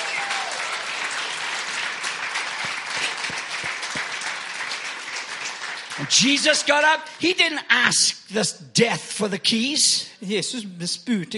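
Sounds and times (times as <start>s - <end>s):
large audience clapping in applause: 0.0s - 7.2s
speech: 6.0s - 11.3s.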